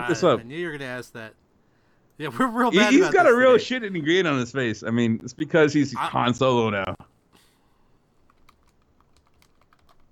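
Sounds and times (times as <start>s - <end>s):
speech: 0.0s - 1.4s, 2.2s - 7.0s
faint hum: 0.0s - 10.0s
typing on a computer keyboard: 8.3s - 10.0s.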